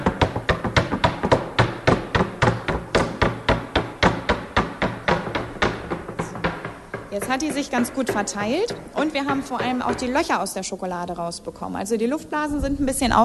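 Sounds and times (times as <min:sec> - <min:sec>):
chocolate mould filled with chocolate rapped against a tabletop: 0:00.0 - 0:10.4
speech: 0:07.2 - 0:13.2.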